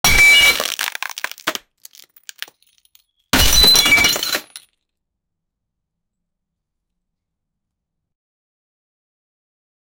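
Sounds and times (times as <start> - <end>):
wood breaking: 0.0 - 4.6.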